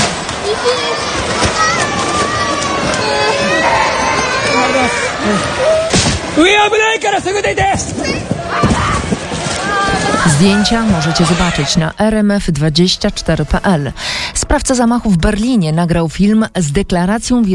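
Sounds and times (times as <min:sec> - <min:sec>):
crowd noise in a shopping centre during an earthquake: 0:00.0 - 0:15.7
children crying and wailing in a shopping centre during an earthquake: 0:00.4 - 0:05.9, 0:08.6 - 0:11.8
speech: 0:06.4 - 0:08.2, 0:10.4 - 0:17.5.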